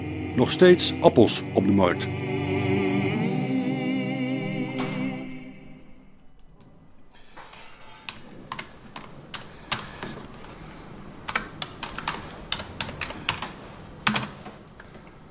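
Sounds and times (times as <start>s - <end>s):
tonal musical passage: 0.0s - 7.2s
speech: 0.4s - 2.3s
typing on a computer keyboard: 8.1s - 9.9s, 11.3s - 14.4s.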